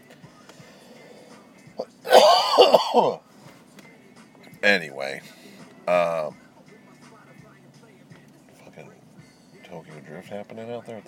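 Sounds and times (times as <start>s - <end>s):
person having a raspy coughing fit: 2.1s - 3.2s
speech: 2.6s - 3.3s, 4.6s - 6.4s, 9.7s - 11.0s.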